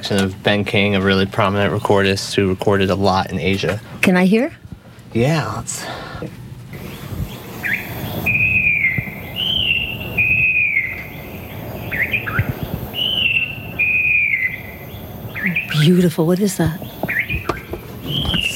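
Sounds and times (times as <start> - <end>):
speech: 0.1 - 4.6, 5.2 - 6.4, 15.8 - 16.8
falcated wren-babbler song from an old cassette tape: 6.8 - 18.5.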